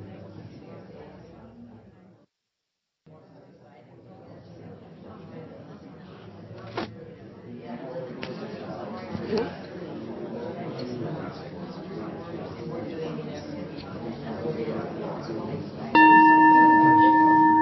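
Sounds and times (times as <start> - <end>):
many people chattering: 0.0 - 2.2, 3.1 - 17.6
bell rung to signal end of an exercise: 16.0 - 17.6.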